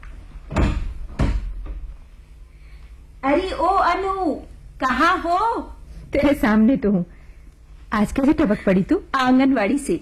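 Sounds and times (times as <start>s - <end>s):
wooden door thuds as a door is opened: 0.5s - 1.8s
speech: 3.2s - 7.2s, 7.9s - 10.0s.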